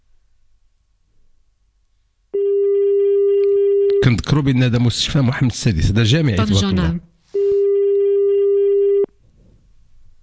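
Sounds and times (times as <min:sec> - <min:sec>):
telephone ringing tone on an unanswered call to a mobile phone: 0:02.4 - 0:04.1, 0:07.4 - 0:09.1
speech: 0:04.0 - 0:07.1.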